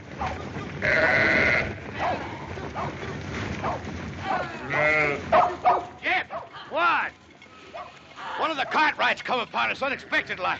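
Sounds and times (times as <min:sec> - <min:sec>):
steady outdoor noise: 0:00.0 - 0:10.5
flock of sheep bleating while driven by herders: 0:00.8 - 0:01.8, 0:04.4 - 0:05.3
speech: 0:08.7 - 0:10.5.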